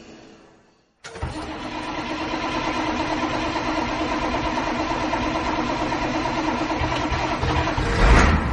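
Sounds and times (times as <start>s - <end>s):
old bus engine cranking and idling with rattle: 1.0s - 8.5s.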